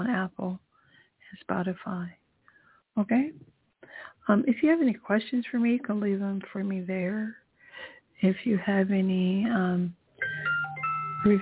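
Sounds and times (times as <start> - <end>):
speech: 0.0 - 0.7, 1.3 - 2.2, 3.0 - 3.5, 4.2 - 10.0, 11.2 - 11.4
phone notification chime with bright stepping tones: 10.2 - 11.4.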